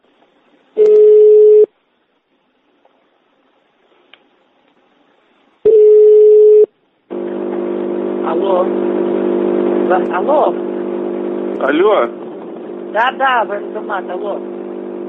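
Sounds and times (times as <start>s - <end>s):
telephone ringing tones as a call is connected: 0.8s - 1.7s, 5.7s - 6.7s
speech: 8.5s - 8.8s, 9.9s - 10.7s, 11.6s - 12.2s, 12.9s - 14.5s.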